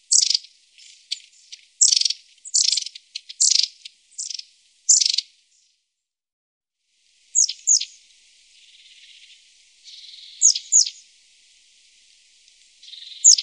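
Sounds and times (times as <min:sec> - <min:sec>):
long-tailed tit rattled chirping calls: 0:00.0 - 0:05.8, 0:07.3 - 0:11.1, 0:12.4 - 0:13.4.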